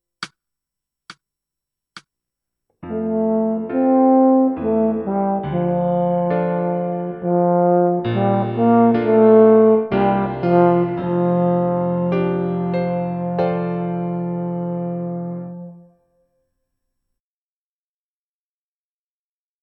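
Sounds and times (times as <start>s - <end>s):
tuba: 2.8s - 16.1s.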